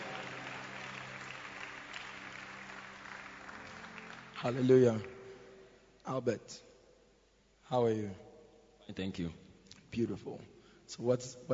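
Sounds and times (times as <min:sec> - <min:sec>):
faint crowd murmur: 0:00.0 - 0:04.0
church congregation applauding: 0:00.0 - 0:05.5
speech: 0:04.4 - 0:05.1, 0:06.1 - 0:06.7, 0:07.7 - 0:08.3, 0:08.9 - 0:11.5.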